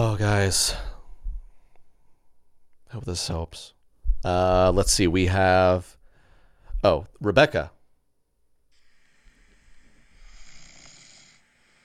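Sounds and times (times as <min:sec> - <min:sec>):
speech: 0:00.0 - 0:00.9, 0:02.9 - 0:06.0, 0:06.8 - 0:07.8
man snoring: 0:08.8 - 0:11.8.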